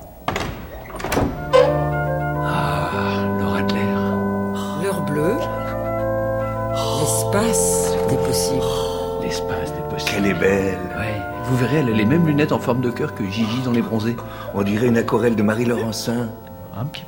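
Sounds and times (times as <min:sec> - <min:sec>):
door opening with thunk and rattle: 0:00.2 - 0:02.1
sustained musical chords: 0:01.2 - 0:17.0
speech: 0:08.4 - 0:17.0.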